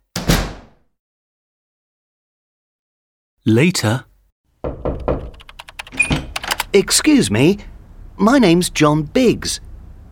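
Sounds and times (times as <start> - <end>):
door swinging shut: 0.1 - 0.8, 4.6 - 6.6
speech: 3.4 - 4.1, 6.8 - 10.1.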